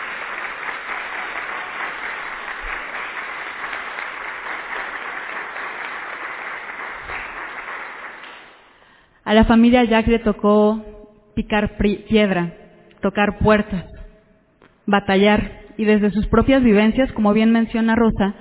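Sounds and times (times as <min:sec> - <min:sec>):
audience applause: 0:00.0 - 0:08.7
speech: 0:09.3 - 0:13.9, 0:14.9 - 0:18.3.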